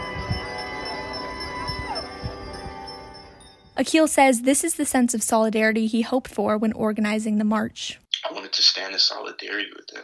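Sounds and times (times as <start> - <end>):
church bells ringing: 0.0 - 3.8
speech: 3.8 - 8.0, 8.6 - 10.0.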